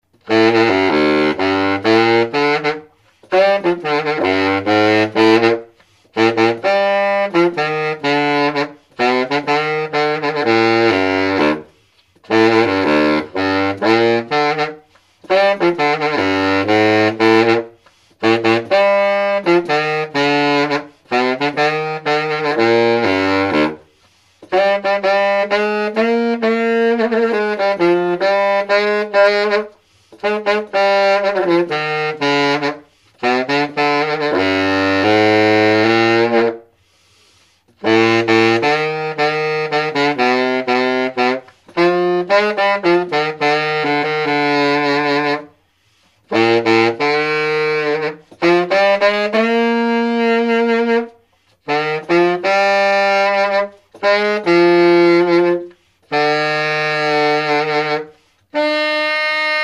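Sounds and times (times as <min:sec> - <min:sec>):
Keilwerth Bundy baritone saxophone: 0:00.1 - 0:59.6.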